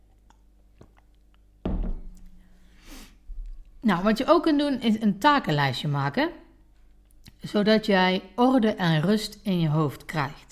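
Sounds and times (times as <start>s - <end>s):
cup thunking softly against a surface: 1.7s - 2.3s
speech: 3.9s - 6.4s, 7.4s - 10.5s.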